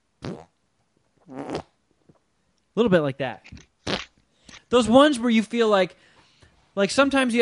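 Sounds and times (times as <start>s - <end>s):
wet sputtering armpit farts: 0.2s - 0.5s, 1.2s - 2.2s, 3.5s - 4.2s
speech: 2.8s - 3.6s, 4.7s - 6.0s, 6.8s - 7.3s.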